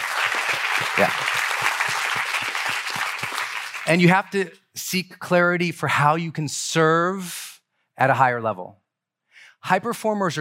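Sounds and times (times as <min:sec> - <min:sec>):
large audience applauding: 0:00.0 - 0:04.4
speech: 0:01.0 - 0:01.4, 0:03.9 - 0:07.4, 0:08.0 - 0:08.8, 0:09.6 - 0:10.3.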